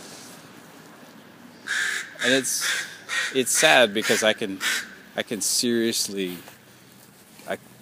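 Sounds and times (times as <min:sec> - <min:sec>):
faint rustle: 0:00.0 - 0:01.6, 0:05.8 - 0:07.8
crow cawing: 0:01.6 - 0:05.2
speech: 0:02.2 - 0:06.6, 0:07.5 - 0:07.7.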